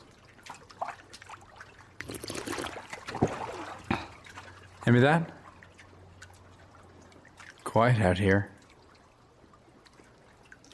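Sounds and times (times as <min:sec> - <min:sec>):
whiskey trickling and pouring from a bottle: 0:01.9 - 0:04.6
speech: 0:04.9 - 0:05.4, 0:07.8 - 0:08.5.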